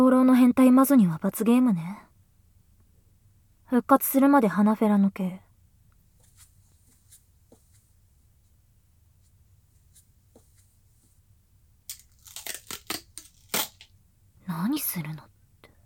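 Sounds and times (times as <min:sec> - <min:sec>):
speech: 0:00.2 - 0:02.1, 0:03.7 - 0:05.4, 0:14.5 - 0:15.3
duct tape tearing off a roll: 0:11.9 - 0:13.9.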